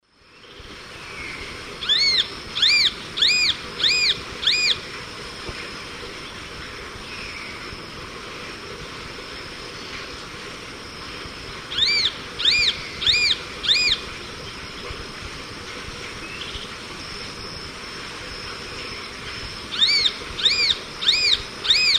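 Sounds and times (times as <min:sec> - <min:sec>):
Buteo magnirostris song in South American eastern lowlands: 0:01.8 - 0:04.8, 0:11.7 - 0:14.0, 0:19.7 - 0:21.9.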